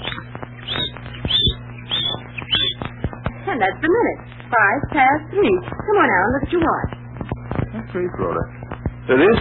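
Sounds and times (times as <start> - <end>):
bird chirping: 0.0 - 3.0
speech: 3.5 - 6.9, 7.8 - 9.3.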